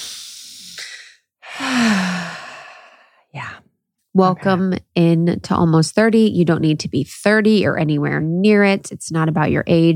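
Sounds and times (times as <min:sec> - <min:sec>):
breathy exhale turning into a voiced falling sigh: 0:00.0 - 0:03.3
deep inhale: 0:00.0 - 0:03.3
speech: 0:04.2 - 0:09.9.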